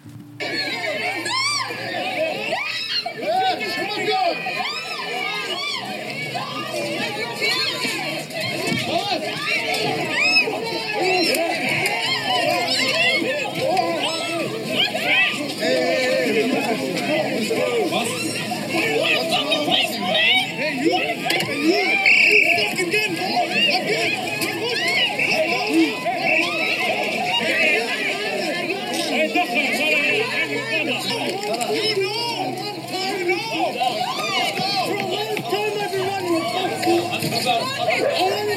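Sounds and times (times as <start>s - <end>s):
dense crowd shouting and yelling at a vigil: 0.0s - 38.5s
laughter: 0.0s - 38.5s.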